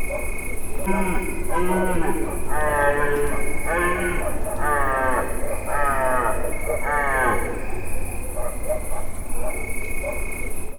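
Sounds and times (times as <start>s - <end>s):
mole cricket in nature: 0.0s - 10.7s
red deer in nature: 0.8s - 8.2s.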